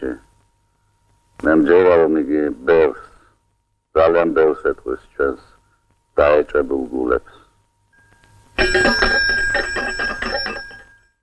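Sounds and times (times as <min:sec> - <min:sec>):
speech: 0:00.0 - 0:00.3, 0:01.4 - 0:03.1, 0:04.0 - 0:05.5, 0:06.2 - 0:07.4
bell ringing with rapid repeated metallic strikes: 0:08.0 - 0:11.2.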